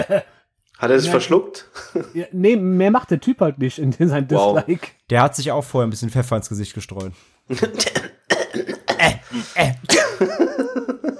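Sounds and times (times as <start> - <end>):
laughter: 0.0 - 0.3, 9.9 - 11.1
speech: 0.0 - 11.1
person sneezing: 7.6 - 10.3.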